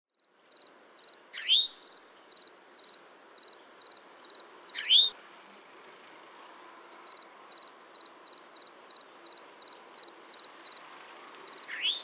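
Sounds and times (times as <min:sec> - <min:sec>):
Eastern Towhee Pipilo erythrophthalmus calling: 0:04.8 - 0:05.1, 0:11.7 - 0:12.0.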